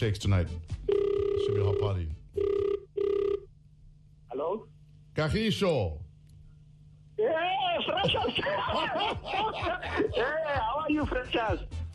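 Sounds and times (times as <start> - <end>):
speech: 0.0 - 2.8, 4.4 - 6.0, 7.2 - 11.9
telephone ringing to place a call: 0.9 - 3.5
laughter: 7.8 - 10.7.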